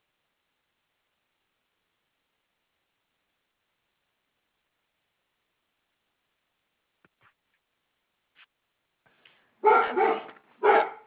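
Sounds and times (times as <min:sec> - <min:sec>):
dog barking: 0:09.6 - 0:11.0.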